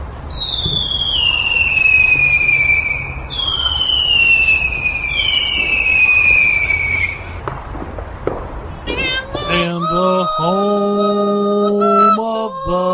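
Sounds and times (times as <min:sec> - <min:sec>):
long falling firework whistles: 0:00.0 - 0:09.6
fireworks steady crackling rumble: 0:00.0 - 0:12.8.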